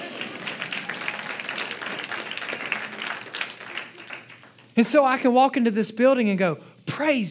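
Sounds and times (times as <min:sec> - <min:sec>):
audience applauding at a church: 0:00.0 - 0:04.8
speech: 0:04.8 - 0:07.2.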